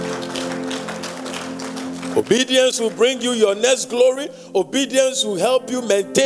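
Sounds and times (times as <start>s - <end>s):
congregation clapping hands: 0.0s - 4.0s
speech: 2.2s - 6.2s.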